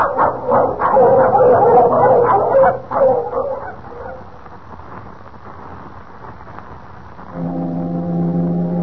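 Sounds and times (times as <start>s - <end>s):
excited dog barks and yips: 0.0s - 4.3s
deep steady foghorn blast: 7.3s - 8.8s.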